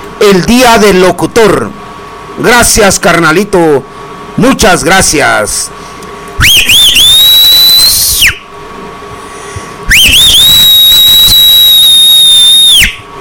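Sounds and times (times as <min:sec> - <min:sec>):
faint hum: 0:00.0 - 0:13.1
speech: 0:00.2 - 0:01.8, 0:02.4 - 0:06.8
person whistling loudly: 0:06.4 - 0:08.5, 0:09.9 - 0:13.0.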